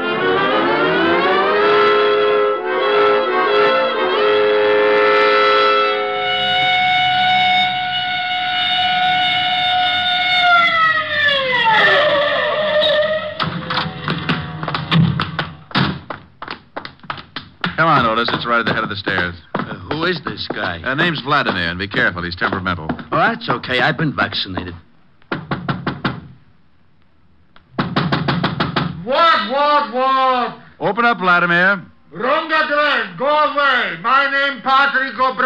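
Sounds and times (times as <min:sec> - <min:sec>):
car siren wailing: 0:00.1 - 0:14.8
taps and thumps: 0:13.4 - 0:26.3, 0:27.7 - 0:29.0
speech: 0:20.7 - 0:24.9, 0:29.8 - 0:35.4.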